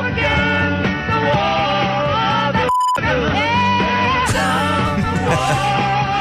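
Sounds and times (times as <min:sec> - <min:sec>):
loud rock song with shouted vocals: 0:00.0 - 0:06.2
censor bleep tone: 0:02.7 - 0:03.1
laughter: 0:04.5 - 0:06.2.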